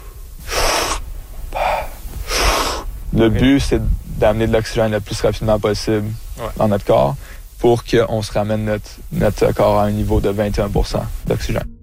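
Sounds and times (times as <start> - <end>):
big active recovery breaths at the water surface after a dive: 0.0 - 3.1, 7.2 - 7.6
speech: 3.1 - 11.7.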